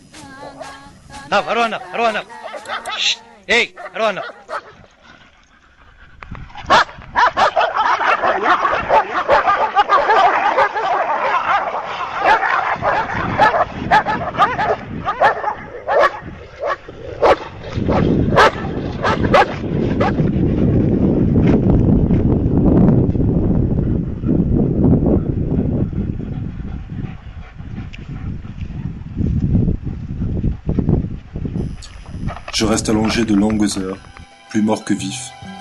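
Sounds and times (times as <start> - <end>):
pack of dogs barking and snarling: 0.3 - 22.5, 23.4 - 33.3
speech: 1.3 - 4.4, 32.8 - 35.4
dogs whimpering and yipping: 2.2 - 4.8, 6.7 - 20.2.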